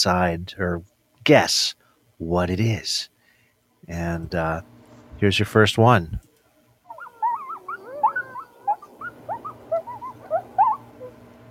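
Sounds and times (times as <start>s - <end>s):
speech: 0.0s - 3.1s, 3.8s - 6.2s
faint low hum: 0.0s - 11.4s
newborn puppies whimpering and squeaking: 6.9s - 11.2s.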